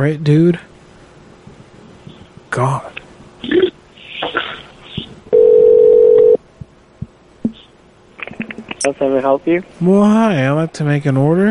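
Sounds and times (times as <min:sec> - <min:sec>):
speech: 0:00.0 - 0:00.7, 0:02.6 - 0:03.6, 0:08.8 - 0:11.4
phone line ringing during call transfer: 0:05.3 - 0:06.4.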